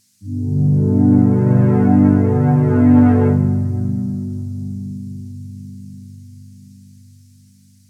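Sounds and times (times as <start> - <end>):
heavy synth pad: 0.2 - 4.8.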